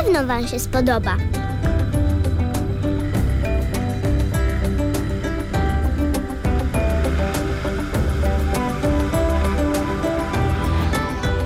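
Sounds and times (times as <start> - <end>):
speech: 0.1 - 1.5
boat engine droning on the way to a floating market in Thailand: 1.3 - 11.4
water splashing from a moving boat: 3.1 - 11.4.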